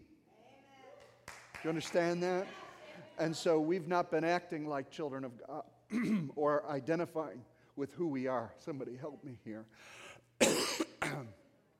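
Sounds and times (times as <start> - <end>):
speech: 1.6 - 2.6, 3.2 - 10.5
person coughing harshly: 5.9 - 6.3, 10.4 - 11.4
raspy throat clearing: 5.9 - 6.3, 10.4 - 11.4.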